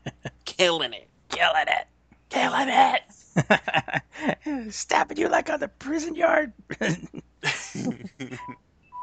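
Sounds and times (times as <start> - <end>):
people laughing: 0.0 - 0.3, 3.4 - 4.3, 6.7 - 8.6
speech: 0.6 - 1.9, 4.7 - 7.1
phone low-battery warning beeps: 8.2 - 9.0.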